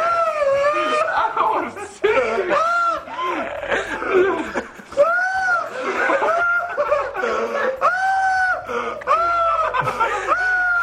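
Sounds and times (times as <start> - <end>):
man screaming in high-pitched wavering cries: 0.0 - 3.8, 5.0 - 6.8, 7.8 - 10.8
laughter-like yelps: 0.0 - 10.8
voices: 0.0 - 10.8.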